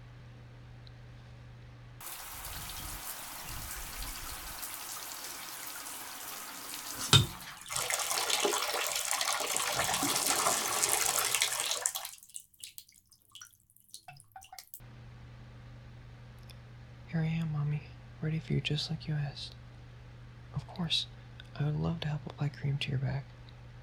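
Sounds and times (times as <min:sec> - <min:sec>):
shower spraying water: 0:02.0 - 0:12.3
speech: 0:18.5 - 0:19.6, 0:20.8 - 0:23.3.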